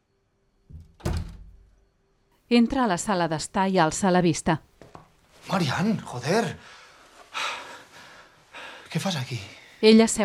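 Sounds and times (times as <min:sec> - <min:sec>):
glass-paned door with small panes and dark green crossbars pushed open: 0:00.7 - 0:01.7
speech: 0:02.5 - 0:04.7, 0:05.5 - 0:06.8, 0:08.9 - 0:10.2.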